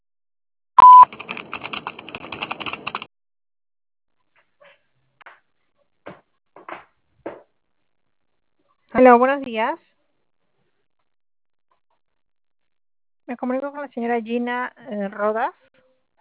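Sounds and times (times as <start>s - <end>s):
telephone line beep: 0.8s - 1.1s
speech: 9.0s - 9.9s, 13.3s - 15.7s.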